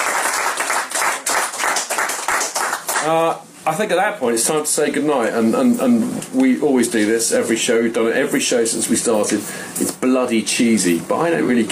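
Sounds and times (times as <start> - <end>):
small group clapping in a pub: 0.0 - 3.2
speech: 3.0 - 11.6.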